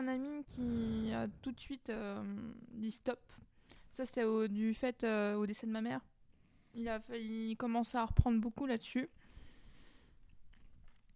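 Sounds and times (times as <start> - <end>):
speech: 0.0 - 6.1, 6.8 - 9.2
person chewing potato chips: 10.1 - 11.1.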